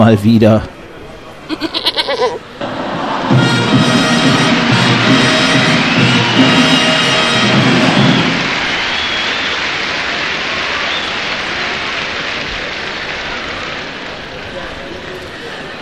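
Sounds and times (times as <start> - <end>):
billy goat bleating: 1.5 - 2.4
loud sustained crowd roar: 2.3 - 15.8.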